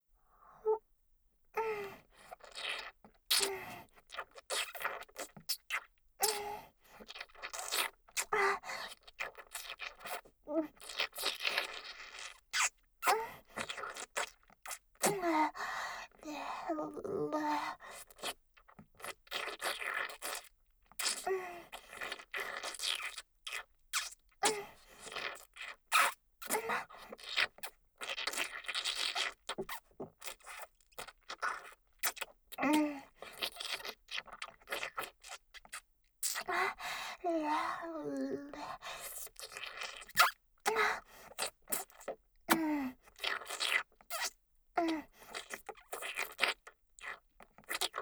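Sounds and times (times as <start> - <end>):
ASMR wet mouth sounds loop: 1.6 - 21.2, 21.9 - 48.0.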